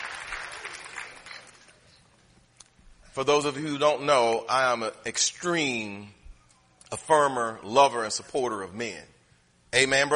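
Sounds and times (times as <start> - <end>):
women in a church congregation clapping during a sermon: 0.0 - 1.7
speech: 3.2 - 6.2, 6.9 - 9.1, 9.7 - 10.1.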